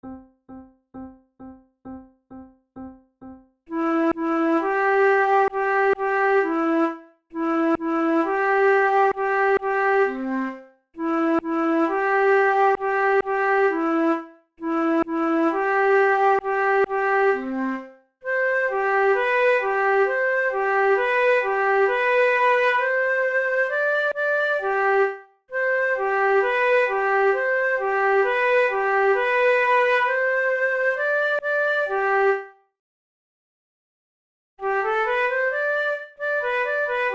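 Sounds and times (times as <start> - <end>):
horn duo playing allegro: 3.7 - 32.5, 34.6 - 37.1.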